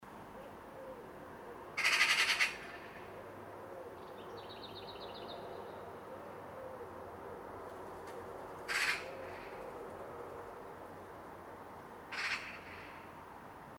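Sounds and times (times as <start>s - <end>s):
steady background noise: 0.1s - 13.7s
Eurasian magpie Pica pica harsh rasping chatter: 8.7s - 9.1s, 12.1s - 12.7s.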